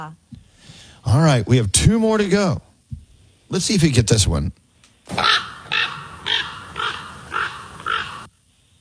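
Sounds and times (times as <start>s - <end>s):
speech: 1.0s - 2.7s, 3.5s - 5.4s
ravens calling: 5.1s - 8.3s.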